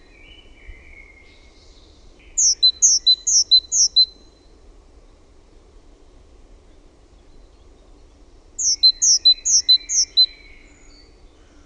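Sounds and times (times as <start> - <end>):
faint low chirps: 0.0 - 11.6
great tit singing see-saw pairs: 2.2 - 4.2, 8.6 - 11.6.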